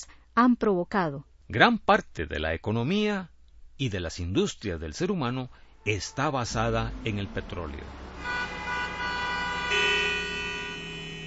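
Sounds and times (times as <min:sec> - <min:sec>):
speech: 0:00.0 - 0:08.4
car horns honking in a traffic jam: 0:05.8 - 0:11.2
steady hum of idling car engines: 0:05.8 - 0:11.2.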